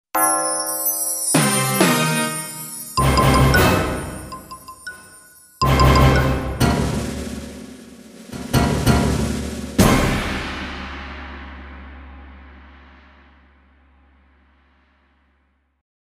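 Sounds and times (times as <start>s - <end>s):
SPD 20 orchestral sound: 0.2s - 10.4s.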